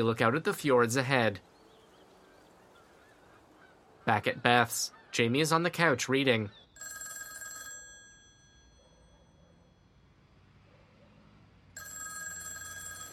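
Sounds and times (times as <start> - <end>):
speech: 0.0 - 1.5, 4.1 - 6.6
telephone ringing with a trilling electronic bell: 6.8 - 9.8, 11.8 - 13.1.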